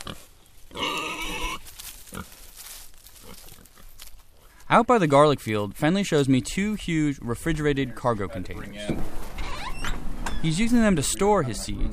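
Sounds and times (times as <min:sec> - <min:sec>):
pig on an organic farm squealing: 0:00.0 - 0:01.7, 0:09.4 - 0:10.5
pigs on an organic farm grunting: 0:00.0 - 0:02.4
low farmyard background on an organic farm: 0:00.0 - 0:11.9
speech: 0:04.7 - 0:09.2, 0:10.4 - 0:11.9.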